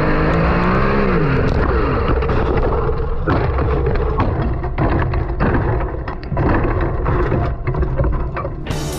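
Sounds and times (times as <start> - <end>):
sprint car engine revving and roaring during a race in New Zealand: 0.0 - 4.8
sprint car banging, clattering and scraping as it flips over and tumbles: 0.4 - 8.9.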